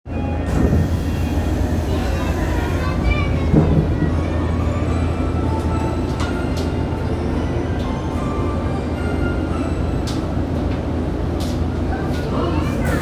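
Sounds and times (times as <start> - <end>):
Tozai Line train at Nishi-Kasai: 0.1 - 13.0.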